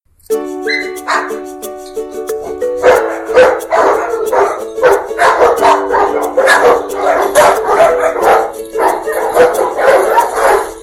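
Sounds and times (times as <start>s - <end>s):
ukulele: 0.2s - 10.8s
dogs: 0.7s - 1.3s, 2.8s - 10.8s.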